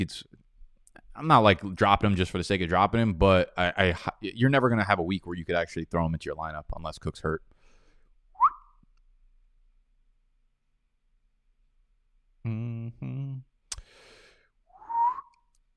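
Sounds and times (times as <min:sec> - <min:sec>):
speech: 0:00.0 - 0:00.3, 0:01.2 - 0:07.5
person whistling short breathy notes: 0:08.4 - 0:08.8, 0:14.7 - 0:15.5.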